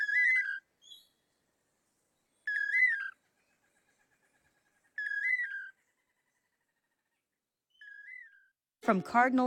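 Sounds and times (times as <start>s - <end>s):
pair of long-tailed manakins singing whistled buzzy phrase: 0.0s - 1.3s, 2.4s - 3.2s, 5.0s - 5.8s, 7.7s - 8.6s
speech: 8.9s - 9.4s.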